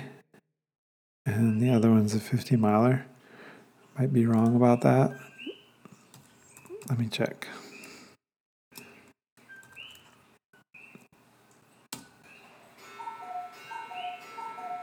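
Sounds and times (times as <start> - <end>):
speech: 1.3 - 3.1, 4.0 - 5.3, 6.8 - 7.7
cuckoo clock ticking: 12.3 - 14.8.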